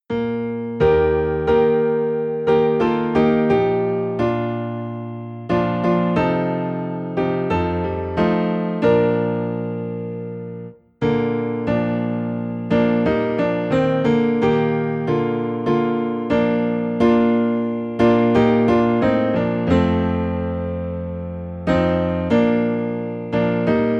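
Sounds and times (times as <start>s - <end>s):
low piano piece in B flat: 0.0s - 23.9s.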